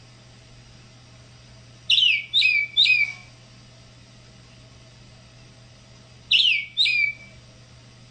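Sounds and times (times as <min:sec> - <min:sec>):
steady low hum: 0:00.0 - 0:08.0
tropical mockingbird singing: 0:01.9 - 0:03.3, 0:06.3 - 0:07.4.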